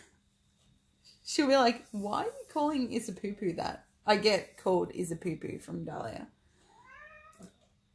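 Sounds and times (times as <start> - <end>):
speech: 1.4 - 6.4
cat meowing: 6.7 - 7.5.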